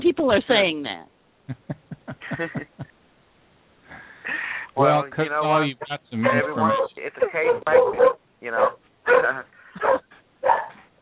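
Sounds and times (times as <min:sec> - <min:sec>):
speech: 0:00.2 - 0:01.7, 0:02.4 - 0:02.9, 0:04.8 - 0:10.0
laughter: 0:01.5 - 0:02.9
dog barking in short rough bursts: 0:06.2 - 0:10.9.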